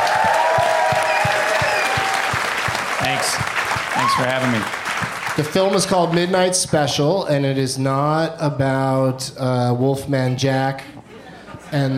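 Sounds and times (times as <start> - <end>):
audience applause: 0.0 - 6.5
speech: 4.1 - 11.0, 11.7 - 11.9.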